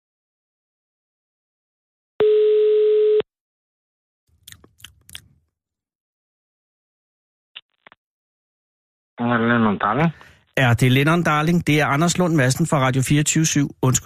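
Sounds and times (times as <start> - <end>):
ringback tone of outgoing phone call: 2.2 - 3.2
speech: 9.2 - 14.0.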